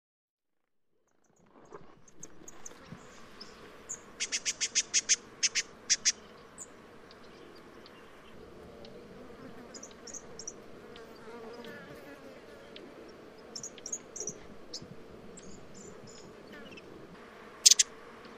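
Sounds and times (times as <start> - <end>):
low steady hiss: 1.4 - 18.3
spotted scrubwren ticking calls: 4.2 - 8.0, 13.5 - 14.8, 17.6 - 17.9.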